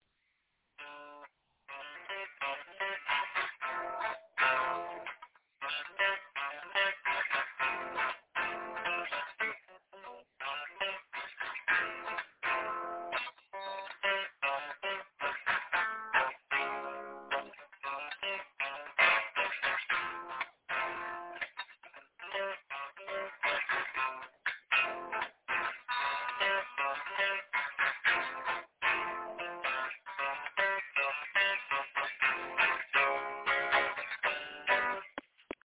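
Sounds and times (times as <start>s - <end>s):
fast intro guitar lick: 0.8s - 35.6s.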